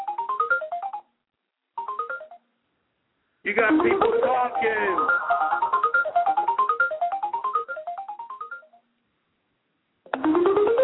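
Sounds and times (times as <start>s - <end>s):
cell phone ringtone: 0.0s - 1.1s, 1.8s - 2.4s, 3.6s - 8.8s, 10.2s - 10.8s
speech: 3.4s - 5.8s.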